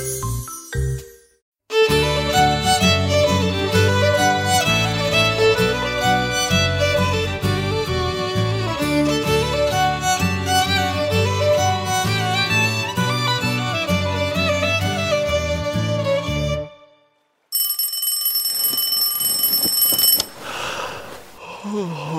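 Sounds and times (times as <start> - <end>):
music: 0.0 - 17.2
alarm clock ringing: 17.6 - 20.4
rustling: 18.4 - 21.4.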